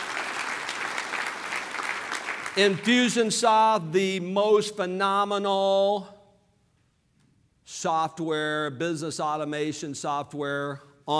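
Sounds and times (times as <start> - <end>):
audience applause: 0.0 - 2.9
speech: 2.6 - 6.2, 7.8 - 11.1.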